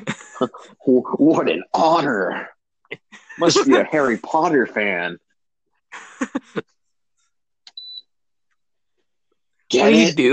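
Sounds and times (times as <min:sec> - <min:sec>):
speech: 0:00.4 - 0:05.2, 0:05.9 - 0:06.7, 0:09.7 - 0:10.3
laughter: 0:02.9 - 0:04.3, 0:05.9 - 0:06.7
short high-pitched electronic beep: 0:07.7 - 0:08.0.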